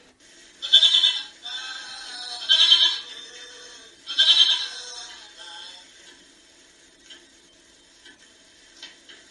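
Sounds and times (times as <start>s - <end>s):
sheep bleating: 0.6s - 5.2s.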